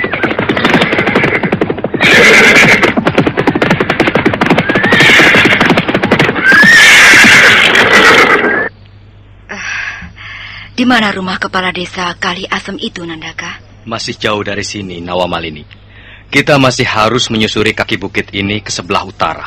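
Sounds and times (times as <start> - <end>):
hooves clattering as riders halt at the foot of a hill: 0.0 - 8.5
ridden horses neighing: 0.0 - 8.7
speech: 10.8 - 19.4.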